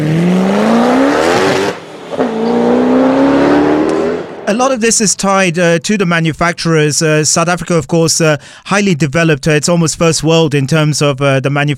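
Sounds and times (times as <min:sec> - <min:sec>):
high-spec racing car engine screaming at high revs on a track: 0:00.0 - 0:04.5
speech: 0:04.5 - 0:11.7.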